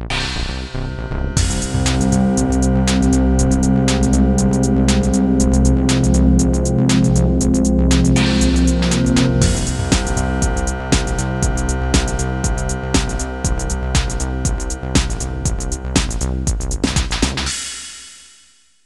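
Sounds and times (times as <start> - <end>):
progressive music intro: 0.1 - 18.4.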